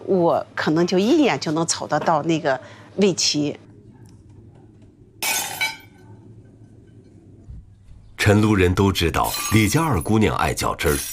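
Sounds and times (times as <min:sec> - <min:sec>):
low steady hum: 0:00.0 - 0:09.0
speech: 0:00.1 - 0:03.6, 0:08.3 - 0:11.1
defective kiln-fired porcelain being smashed in a porcelain workshop: 0:05.2 - 0:06.0.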